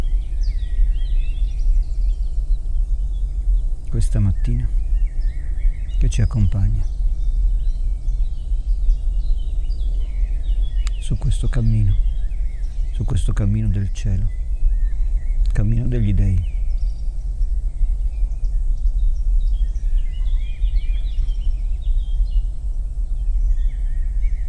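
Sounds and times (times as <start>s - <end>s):
birds singing and chirping outdoors: 0.0s - 24.4s
low rumbling ambient noise: 0.0s - 24.4s
speech: 4.0s - 4.9s, 6.0s - 7.0s, 11.1s - 12.0s, 13.0s - 14.4s, 15.6s - 16.5s.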